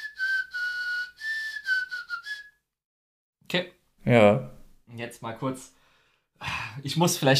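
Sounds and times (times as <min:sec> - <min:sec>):
person whistling: 0:00.0 - 0:02.7
speech: 0:03.5 - 0:05.8, 0:06.4 - 0:07.3.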